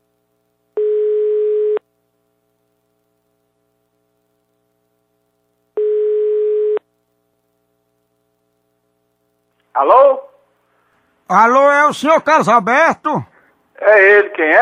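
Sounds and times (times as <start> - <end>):
faint hum: 0.0 - 14.6
telephone ringback tone while a call is placed: 0.8 - 1.8, 5.8 - 6.8
speech: 9.8 - 10.3, 11.3 - 14.6.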